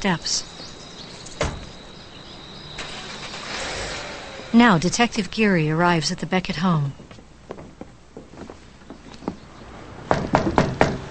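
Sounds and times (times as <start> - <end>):
speech: 0.0 - 0.6, 4.5 - 7.0
car engine starting and humming: 0.7 - 5.8
car door shutting: 1.2 - 1.9.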